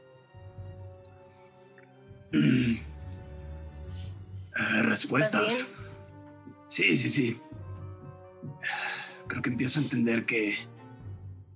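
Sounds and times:
speech: 2.3s - 2.9s, 5.0s - 5.8s, 6.8s - 7.4s, 9.4s - 10.8s
person giving a short rough cough: 2.4s - 2.9s.

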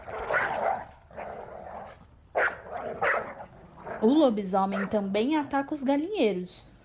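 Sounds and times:
angry dogs barking: 0.0s - 5.2s
rough noisy background: 0.0s - 6.2s
speech: 4.0s - 6.7s.

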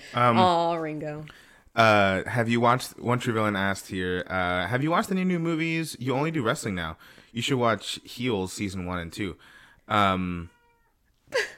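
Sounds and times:
speech: 0.1s - 10.6s, 11.3s - 11.5s
cat meowing: 10.2s - 11.0s.

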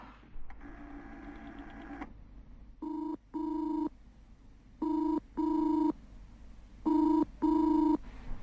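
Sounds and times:
telephone ringing unanswered: 2.8s - 3.9s, 4.8s - 6.0s, 6.9s - 8.0s.

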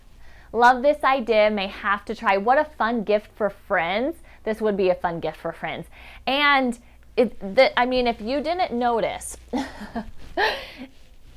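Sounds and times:
faint noise: 0.0s - 11.3s
speech: 0.5s - 11.0s
harsh cough into a microphone: 9.6s - 11.3s.

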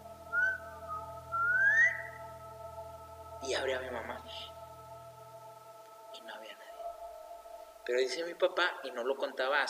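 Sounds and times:
steady low hum: 0.0s - 9.0s
person whistling a family signal whistle: 0.3s - 2.2s
speech: 3.4s - 4.6s, 7.9s - 9.6s.

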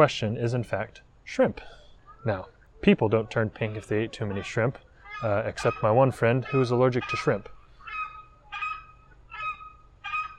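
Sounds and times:
speech: 0.0s - 7.6s
crested screamer giving harsh honking calls: 5.0s - 10.3s.

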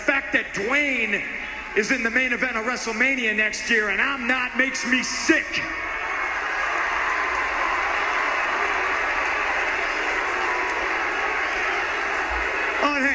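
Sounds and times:
speech: 0.3s - 5.9s
large arena crowd cheering and applause: 4.8s - 13.1s.

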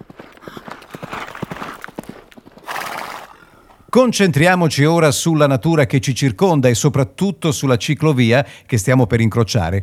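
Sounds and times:
horse hooves clip-clopping: 0.0s - 4.1s
horse neighing: 2.6s - 4.0s
speech: 3.9s - 9.8s.

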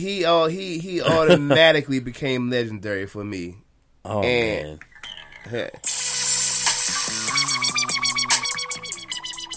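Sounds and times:
speech: 0.0s - 6.0s
laughter: 1.1s - 1.6s
hissing sizzling hi-hats: 5.8s - 9.5s
heavily processed instrumental hip-hop beat with strip-club feel: 5.9s - 9.5s.

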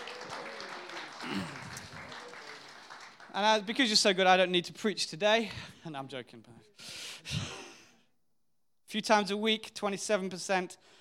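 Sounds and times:
audience voices cheering and whooping: 0.0s - 2.7s
church audience applauding: 0.0s - 3.8s
speech: 3.4s - 7.5s, 8.9s - 10.9s.

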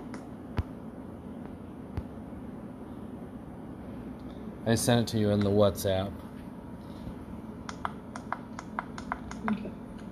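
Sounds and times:
low room hum: 0.0s - 10.1s
speech: 4.7s - 6.2s
computer clicks: 7.6s - 9.6s.

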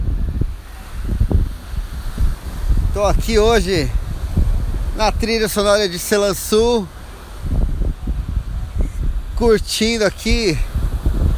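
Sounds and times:
gusts of wind buffeting the microphone: 0.0s - 11.3s
sea waves washing and rumbling: 0.0s - 11.3s
speech: 3.0s - 4.0s, 5.0s - 7.0s, 9.4s - 10.7s.

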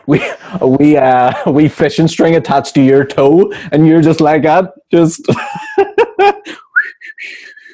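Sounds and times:
person laughing in short bursts: 0.0s - 1.8s, 5.2s - 7.7s
speech: 0.1s - 5.6s
person whistling a tune: 6.5s - 7.7s.

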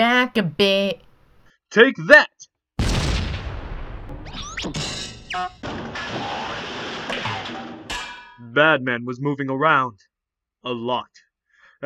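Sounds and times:
speech: 0.0s - 1.0s, 1.7s - 2.4s, 4.6s - 5.6s, 8.5s - 11.2s
bombs exploding in a video game: 2.8s - 7.9s.

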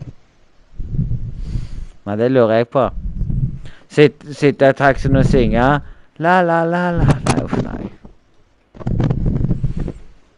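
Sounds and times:
man breathing into the microphone: 0.8s - 2.0s, 3.0s - 3.9s, 5.8s - 6.2s, 9.2s - 10.2s
speech: 2.1s - 3.0s, 3.9s - 7.2s.

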